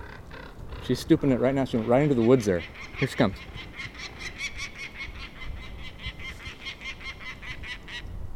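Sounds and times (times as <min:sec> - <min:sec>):
male peregrine falcon calling at a raven: 0:00.0 - 0:08.1
low wind rumble: 0:00.0 - 0:08.3
speech: 0:00.8 - 0:03.7.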